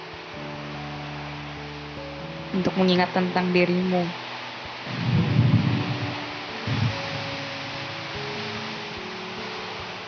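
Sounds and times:
steady hissing rain: 0.0 - 10.0
speech: 2.5 - 4.2
low thunder rumbling: 4.9 - 7.6.

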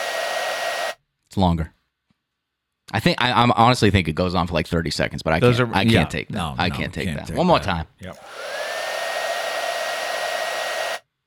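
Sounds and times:
hair dryer blowing: 0.0 - 1.0, 8.2 - 11.0
speech: 1.3 - 1.8, 2.9 - 8.5.

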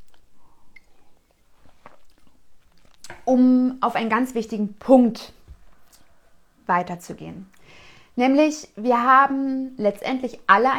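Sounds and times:
person sipping a drink: 0.0 - 3.2
soft wet mouth and swallowing noises: 0.0 - 3.2
speech: 3.3 - 5.4, 6.7 - 10.7.

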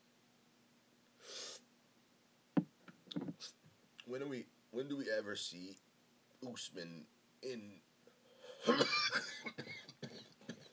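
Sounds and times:
speech: 4.1 - 7.9, 8.6 - 9.8
person coughing: 8.6 - 10.7.

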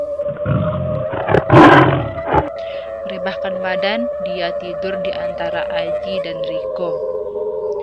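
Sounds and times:
tiger roaring: 0.2 - 2.6
speech: 3.3 - 7.1.

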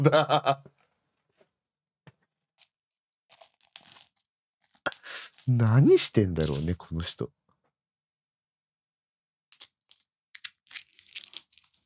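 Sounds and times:
speech: 0.0 - 0.7, 5.5 - 7.4
adhesive tape being handled, cut and stuck over a person's mouth: 3.3 - 6.9, 9.6 - 11.8.

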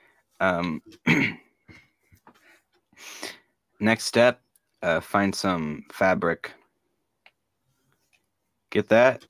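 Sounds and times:
speech: 0.4 - 1.4, 3.8 - 6.6, 8.7 - 9.2
rough throaty coughs: 0.9 - 1.8.

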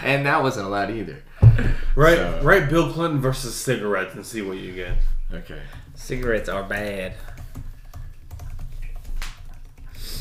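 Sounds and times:
speech: 0.0 - 7.4
typing on a computer keyboard: 5.7 - 10.1.

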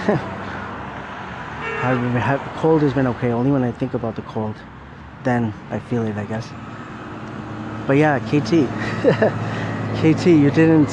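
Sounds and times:
speech: 0.0 - 0.4, 1.8 - 6.7, 7.9 - 10.9
rumble and hiss of traffic at a street intersection: 0.0 - 10.9
car horn: 1.6 - 2.3
laughter: 8.5 - 10.0.

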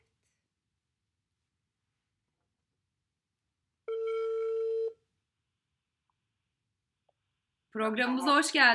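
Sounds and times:
outgoing FaceTime video call electronic ring tones: 3.9 - 5.0
speech: 7.7 - 8.7.

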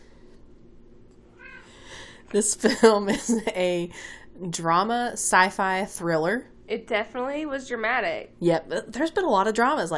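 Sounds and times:
cat meowing: 1.4 - 1.7
speech: 2.3 - 9.9.

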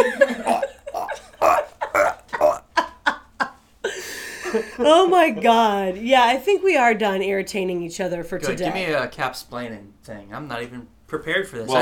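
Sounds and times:
speech: 0.0 - 0.2, 4.5 - 11.8
laughter: 0.0 - 5.8
person burping: 0.3 - 2.9.

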